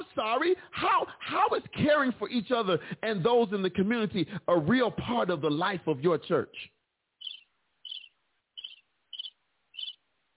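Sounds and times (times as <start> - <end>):
speech: 0.2 - 6.8
sharp high-pitched bird calls: 7.2 - 10.0.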